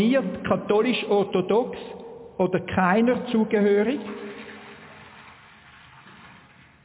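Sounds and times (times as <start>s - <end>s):
speech: 0.0s - 4.2s
water pouring into a basin: 3.9s - 6.8s.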